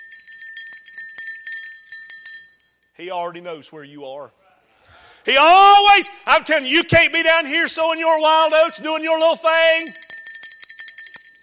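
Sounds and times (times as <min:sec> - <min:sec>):
small bell on a harness jingling: 0:00.0 - 0:03.0, 0:08.6 - 0:11.4
speech: 0:03.0 - 0:04.4, 0:05.2 - 0:10.0.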